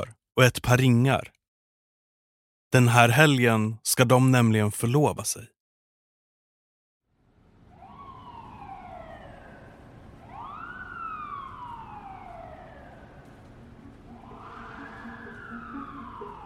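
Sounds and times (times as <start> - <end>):
speech: 0.0 - 1.4, 2.7 - 5.6
steady rumble of traffic: 7.2 - 16.4
ambulance siren wailing: 7.6 - 16.4.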